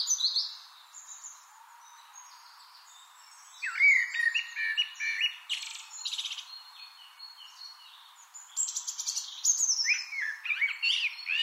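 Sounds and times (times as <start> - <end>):
Eurasian blackbird Turdus merula warbling and twittering: 0.0 - 11.4.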